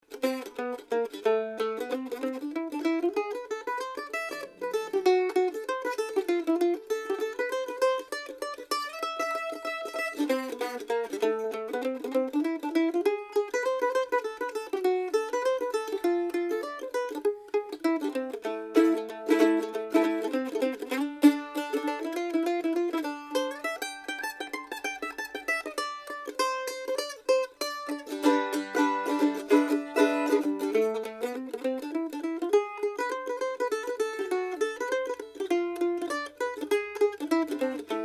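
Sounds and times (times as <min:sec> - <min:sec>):
mandolin: 0:00.0 - 0:38.0.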